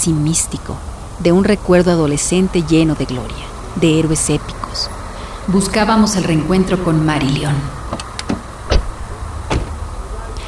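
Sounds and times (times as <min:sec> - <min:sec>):
speech: 0:00.0 - 0:07.9
low idling hum: 0:00.4 - 0:10.4
car door latch clicks: 0:07.9 - 0:09.8.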